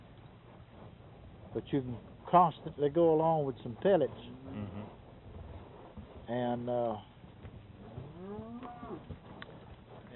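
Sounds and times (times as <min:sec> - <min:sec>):
herd of cattle rustling: 0:00.0 - 0:10.1
speech: 0:01.5 - 0:04.8, 0:06.3 - 0:07.1
cow mooing: 0:08.0 - 0:09.1.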